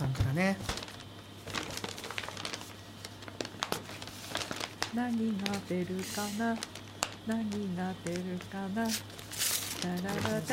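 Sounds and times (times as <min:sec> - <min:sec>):
faint steady hum: 0:00.0 - 0:10.5
speech: 0:00.4 - 0:00.8, 0:05.0 - 0:09.2, 0:09.8 - 0:10.5
large delivered paper bag rustling as it is opened: 0:00.6 - 0:07.2, 0:08.1 - 0:10.5.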